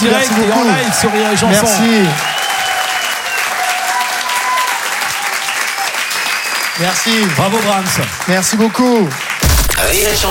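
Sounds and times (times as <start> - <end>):
speech: 0.0 - 2.3, 6.8 - 10.3
large audience applauding loudly: 0.0 - 10.3
faint audience cheers and whistles: 0.1 - 7.3.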